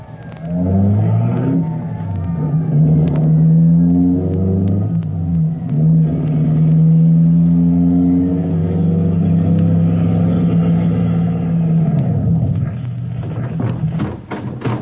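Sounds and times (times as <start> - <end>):
fire engine engine roaring driving up a hill: 0.0 - 14.8.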